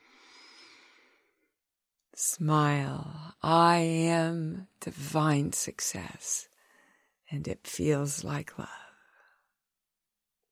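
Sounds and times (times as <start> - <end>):
single long airy breath: 0.0 - 1.4, 6.6 - 7.2
speech: 2.2 - 6.5, 7.3 - 8.8.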